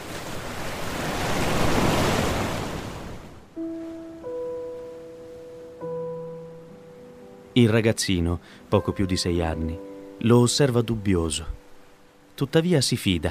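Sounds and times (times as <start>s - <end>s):
ocean wave breaking on shore: 0.0s - 5.6s
speech: 7.6s - 11.6s, 12.4s - 13.2s.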